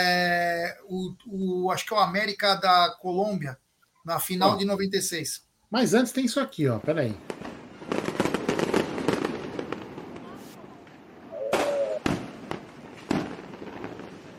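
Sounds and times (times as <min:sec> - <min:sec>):
speech: 0:00.8 - 0:08.0
fireworks and firecrackers bursting in crackling volleys: 0:07.0 - 0:14.3
whistling firework rocket: 0:11.3 - 0:12.3.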